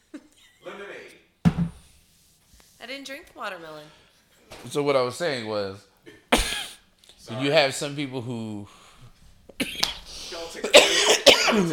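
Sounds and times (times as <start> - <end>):
speech: 2.9 - 5.9, 7.3 - 8.8, 11.5 - 11.7
harsh hoarse coughs: 6.0 - 6.9, 9.6 - 10.0, 10.7 - 11.7.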